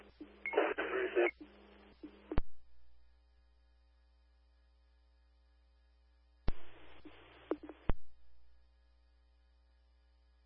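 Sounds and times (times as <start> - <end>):
crackly radio transmission bursts: 0.0 - 2.4, 6.5 - 8.0.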